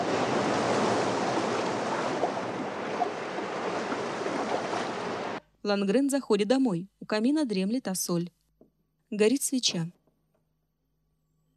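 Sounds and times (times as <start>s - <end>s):
big stormy sea waves roaring: 0.0s - 5.4s
rushing wind: 0.0s - 5.4s
speech: 5.6s - 8.4s, 9.1s - 10.0s.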